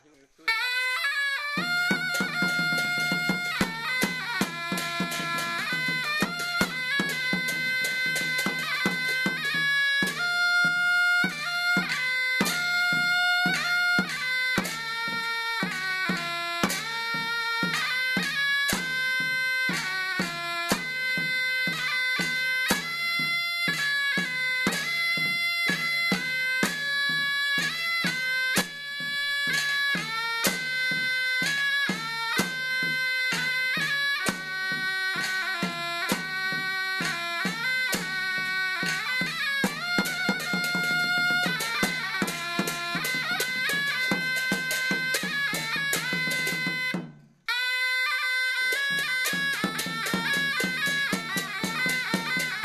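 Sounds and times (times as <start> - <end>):
Mien percussion: 0.0 - 52.6
Mien shawm playing: 0.0 - 52.6.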